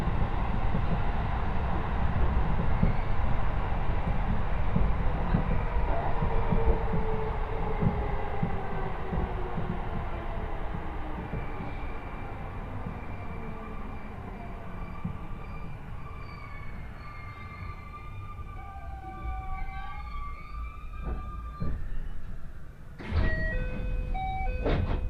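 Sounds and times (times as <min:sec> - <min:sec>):
train on the Kosei Line running on an elevated track: 0:00.0 - 0:25.0
train squealing tones: 0:11.6 - 0:22.5.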